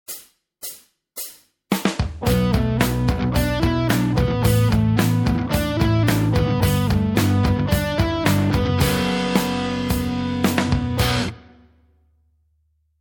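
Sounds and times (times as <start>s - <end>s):
basic guitar playing with hammer-ons and pull-offs: 2.2s - 11.7s.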